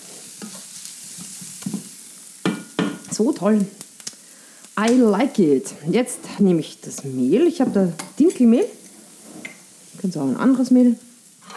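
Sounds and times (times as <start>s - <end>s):
kohlrabi sizzling and browning in butter in a pan: 0.0s - 11.5s
speech: 3.2s - 3.8s, 4.8s - 8.8s, 10.0s - 11.1s.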